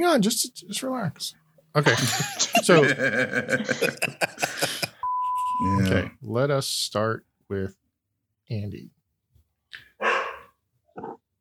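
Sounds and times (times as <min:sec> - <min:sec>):
speech: 0:00.0 - 0:04.9, 0:05.6 - 0:07.8, 0:08.5 - 0:09.0
laughter: 0:01.8 - 0:05.7
dog barking: 0:10.0 - 0:10.6.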